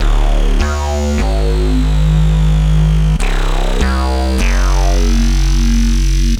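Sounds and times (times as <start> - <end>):
classic drum and bass bassline: 0.0 - 6.3.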